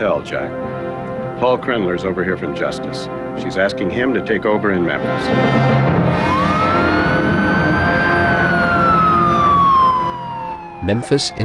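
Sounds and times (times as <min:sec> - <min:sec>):
speech: 0:00.0 - 0:00.8, 0:01.4 - 0:06.4, 0:10.9 - 0:11.4
steady rumble of engines and traffic noise: 0:06.0 - 0:11.4
police siren wailing: 0:06.1 - 0:11.4.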